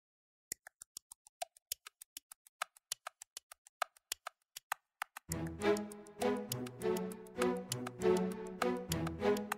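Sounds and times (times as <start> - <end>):
clock ticking: 0.6 - 9.5
bright music: 5.3 - 9.5.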